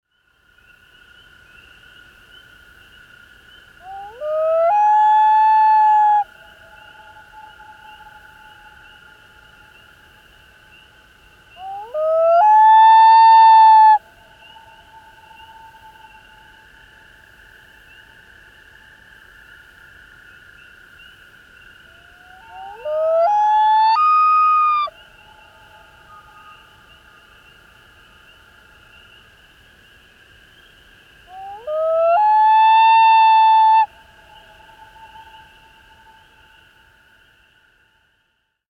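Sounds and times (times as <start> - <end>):
Common Loon wailing: 3.9 - 6.2, 11.6 - 14.0, 22.1 - 24.9, 31.3 - 33.9.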